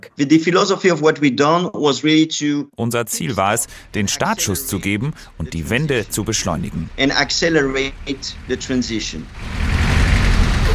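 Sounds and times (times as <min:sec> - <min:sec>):
speech: 0:00.2 - 0:09.7
dense street traffic roar in Praia: 0:07.8 - 0:10.7.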